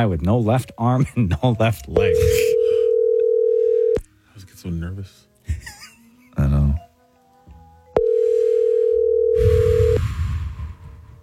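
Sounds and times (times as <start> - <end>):
speech: 0.0 - 2.6, 4.6 - 5.8
ringback tone of an outgoing phone call: 2.0 - 4.0, 8.0 - 10.0
laughter: 5.4 - 6.4.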